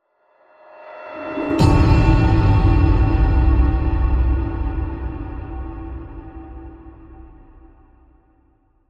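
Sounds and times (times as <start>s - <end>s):
Chinese chappa cymbals whoosh hit: 1.2s - 8.2s.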